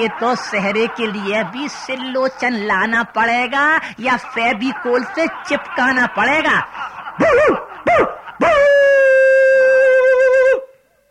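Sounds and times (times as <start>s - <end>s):
speech: 0.0s - 8.9s
laughter: 0.0s - 10.6s
dog yelping: 7.2s - 8.3s.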